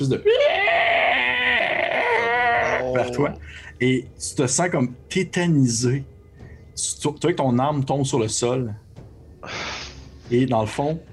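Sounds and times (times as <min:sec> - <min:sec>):
speech: 0:00.0 - 0:00.5, 0:02.9 - 0:06.1, 0:06.8 - 0:08.8, 0:10.3 - 0:11.1
voice imitating a creature's howl with a wavering wail: 0:00.2 - 0:03.3.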